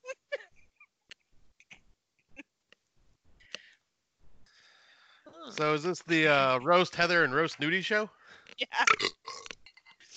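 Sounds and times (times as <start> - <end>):
speech: 5.5 - 9.2
person burping: 8.8 - 9.6.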